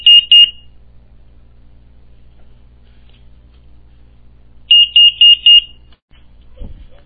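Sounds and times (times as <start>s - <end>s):
security alarm panel exit-delay beeping: 0.0s - 0.7s, 4.7s - 5.9s.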